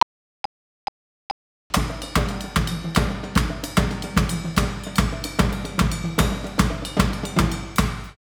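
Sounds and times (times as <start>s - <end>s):
drum solo: 1.7s - 8.2s.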